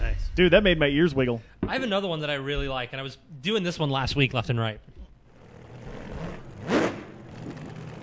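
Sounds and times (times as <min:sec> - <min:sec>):
speech: 0:00.2 - 0:05.0
car engine revving: 0:05.3 - 0:08.0.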